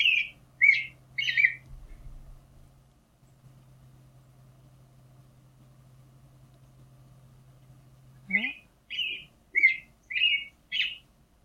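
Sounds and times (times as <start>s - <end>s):
American robin singing: 0.0s - 1.7s, 8.2s - 11.1s.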